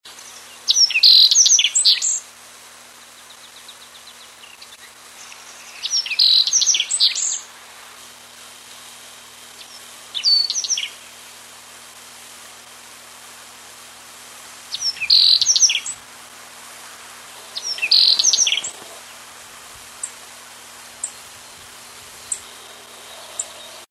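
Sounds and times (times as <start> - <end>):
Espodocephala birdsong: 0.1 - 2.3, 2.9 - 7.6, 9.5 - 11.5, 14.7 - 16.1, 16.8 - 23.8.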